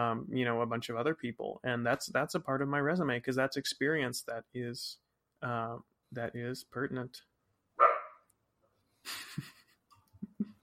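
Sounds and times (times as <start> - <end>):
speech: 0.0 - 7.9
dog barking: 7.8 - 8.2.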